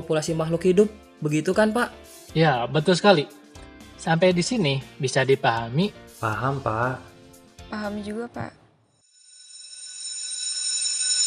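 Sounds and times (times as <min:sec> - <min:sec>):
speech: 0:00.1 - 0:03.4, 0:04.0 - 0:07.1, 0:07.7 - 0:08.6
electric school bell ringing to end a class lesson: 0:09.1 - 0:11.2.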